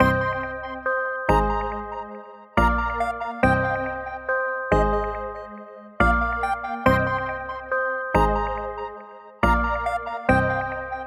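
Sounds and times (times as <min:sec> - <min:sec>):
happy melody loop in C minor: 0:00.0 - 0:11.0.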